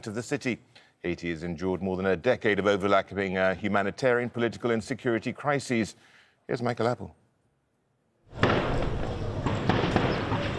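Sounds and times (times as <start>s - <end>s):
speech: 0.0s - 7.2s
dense steady noise: 0.0s - 10.5s
volley of gunfire echoing in open air: 8.3s - 10.5s.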